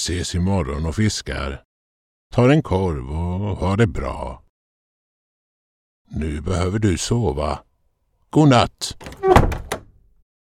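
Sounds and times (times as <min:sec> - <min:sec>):
speech: 0:00.0 - 0:01.7, 0:02.3 - 0:04.4, 0:06.1 - 0:07.7, 0:08.3 - 0:09.6
wooden door shutting at night: 0:09.0 - 0:10.0.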